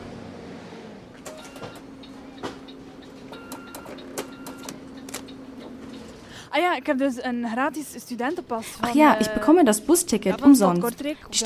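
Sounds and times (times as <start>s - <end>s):
city bus engine idling at a stop in Kortrijk: 0.0s - 6.4s
sharp mechanical clicks of a city bus: 1.2s - 5.7s
speech: 6.6s - 11.4s.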